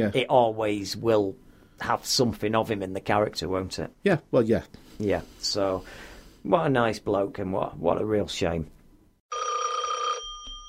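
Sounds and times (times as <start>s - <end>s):
speech: 0.0s - 8.8s
telephone bell ringing: 9.3s - 10.6s.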